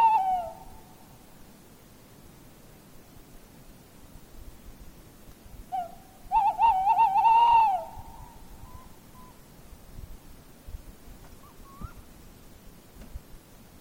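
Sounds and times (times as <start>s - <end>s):
tawny owl hooting: 0.0s - 1.1s, 5.7s - 9.4s, 11.4s - 12.1s.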